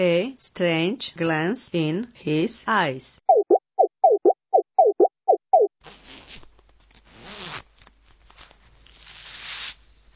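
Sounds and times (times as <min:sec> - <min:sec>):
speech: 0:00.0 - 0:03.4
short tonal chirps: 0:03.3 - 0:05.7
waiter's jacket zipper pulled open: 0:05.8 - 0:07.7.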